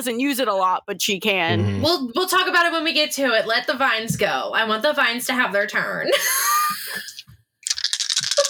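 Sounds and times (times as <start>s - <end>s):
speech: 0.0s - 7.0s
dice rattling and clacking in cupped hands: 7.6s - 8.4s.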